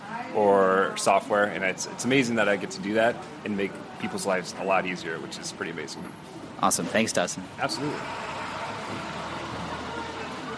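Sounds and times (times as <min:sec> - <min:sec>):
faint indistinct voices: 0:00.0 - 0:10.5
speech: 0:00.4 - 0:09.1
truck engine running: 0:07.8 - 0:10.5.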